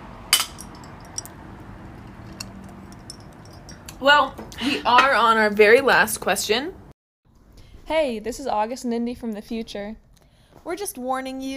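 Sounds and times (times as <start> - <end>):
quiet low hum: 0.0 - 11.5
glasses clinking in a toast with drinks: 0.4 - 3.9
speech: 4.0 - 6.8, 7.9 - 10.0, 10.6 - 11.5.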